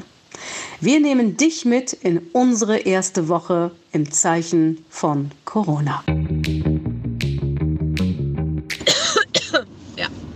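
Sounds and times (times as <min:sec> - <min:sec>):
speech: 0:00.8 - 0:06.2
rhythmic music: 0:06.1 - 0:09.1
person coughing: 0:08.8 - 0:09.7.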